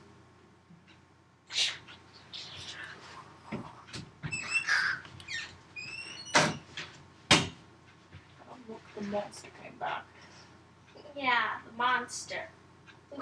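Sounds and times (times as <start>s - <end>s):
door being opened: 4.0s - 7.5s
high squeaky door creaks: 4.2s - 6.7s
speech: 9.1s - 10.1s, 11.2s - 12.6s.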